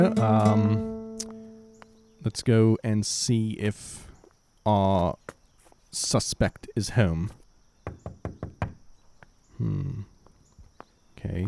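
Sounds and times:
speech: 0.0 - 0.9, 2.2 - 4.1, 4.7 - 8.0, 9.6 - 10.1, 11.2 - 11.4
knocking on a door: 7.8 - 8.8
murmured voice: 9.5 - 10.1.

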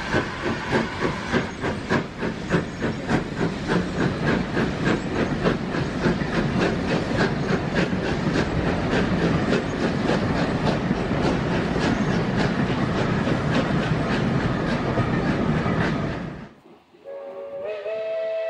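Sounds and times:
vintage steam train coaches running on rails: 0.0 - 16.5.

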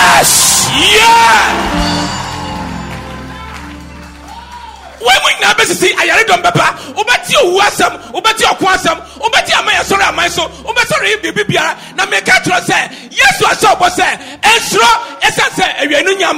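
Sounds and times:
crowd screaming and cheering: 0.0 - 5.4
speech: 5.1 - 16.3.

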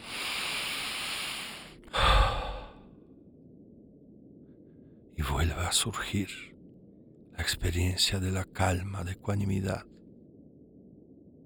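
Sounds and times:
slow breath in through the nose and out through the mouth during guided meditation: 0.0 - 3.2
speech: 5.4 - 6.5, 7.4 - 10.0.

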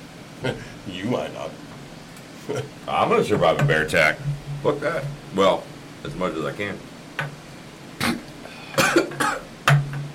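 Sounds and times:
speech: 0.4 - 1.7, 2.4 - 7.4
person coughing after snorting whiskey: 8.0 - 9.5.

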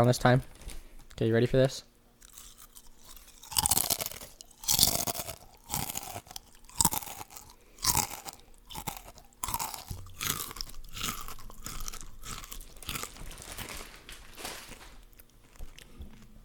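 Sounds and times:
speech: 0.0 - 0.6, 1.2 - 1.9
salt and vinegar potato chips crunching: 2.2 - 16.4
softer steady chewing: 2.2 - 16.4.

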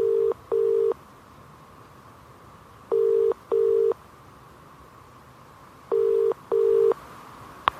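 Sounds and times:
phone call ringing tone in double bursts: 0.0 - 1.0, 2.9 - 4.0, 5.9 - 7.0
faint hiss: 0.0 - 7.7.

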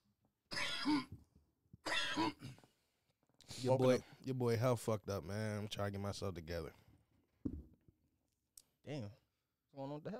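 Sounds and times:
harsh chesty coughs: 0.5 - 1.2, 1.8 - 2.7
speech: 0.8 - 1.1, 3.6 - 6.8, 8.9 - 9.2, 9.8 - 10.1.

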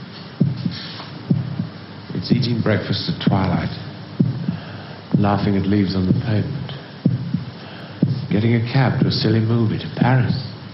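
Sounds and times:
soft hiss: 0.0 - 10.7
heart beating: 0.4 - 2.6, 3.2 - 9.3
speech: 2.2 - 3.8, 5.2 - 6.6, 8.3 - 10.7.

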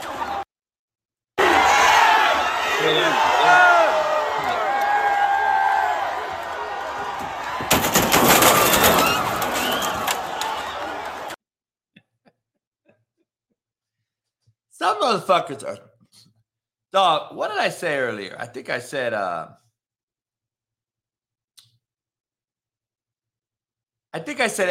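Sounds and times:
football fans roaring and yelling as a dense crowd: 0.0 - 0.4, 1.4 - 11.4
sharp cracks and bangs: 7.2 - 11.3
speech: 15.1 - 15.9, 16.9 - 19.6, 24.2 - 24.6.

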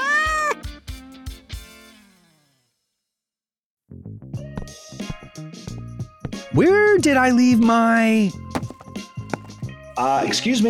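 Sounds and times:
cat giving a rising-and-falling meow: 0.0 - 0.6
speech: 6.5 - 8.4, 10.0 - 10.6.

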